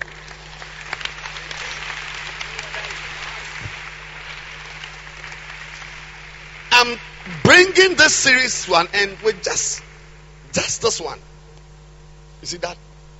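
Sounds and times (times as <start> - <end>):
crowd applauding: 0.0 - 11.1
low constant hum: 0.0 - 13.1
speech: 6.8 - 9.9, 10.6 - 11.3, 12.4 - 12.8.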